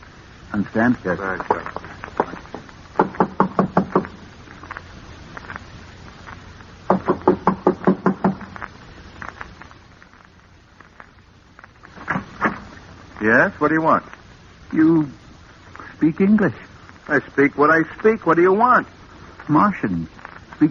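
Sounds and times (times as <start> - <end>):
speech: 0.5 - 1.9, 13.3 - 15.2, 16.0 - 20.7
sharp solid knocks on a wooden door: 3.0 - 4.1, 6.9 - 8.5.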